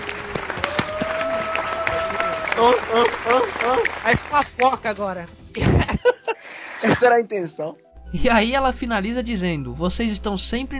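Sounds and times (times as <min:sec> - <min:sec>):
hands clapping: 0:00.0 - 0:04.9
laughter: 0:00.7 - 0:04.0, 0:05.6 - 0:07.1
speech: 0:02.6 - 0:05.9, 0:06.9 - 0:10.7.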